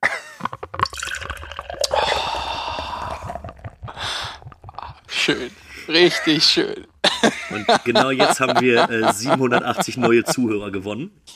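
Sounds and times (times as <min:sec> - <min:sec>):
beer pouring from an unwieldy bottle: 0:00.4 - 0:07.1
laughter: 0:05.1 - 0:10.6
speech: 0:05.3 - 0:11.3.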